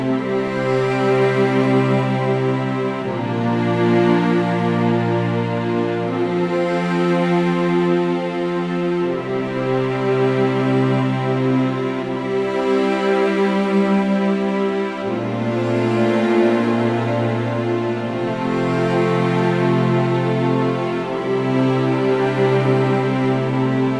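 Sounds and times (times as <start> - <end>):
sweet string sequence: 0.0 - 23.9.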